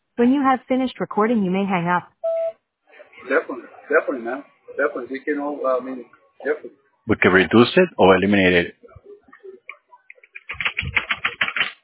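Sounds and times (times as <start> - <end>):
speech: 0.2 - 2.1, 3.3 - 9.0
typing on a computer keyboard: 10.1 - 11.8.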